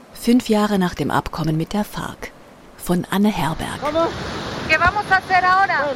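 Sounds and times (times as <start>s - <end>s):
river rushing in the Caguán region of Caquetá in southeastern Colombia: 0.0s - 5.9s
speech: 0.2s - 5.9s.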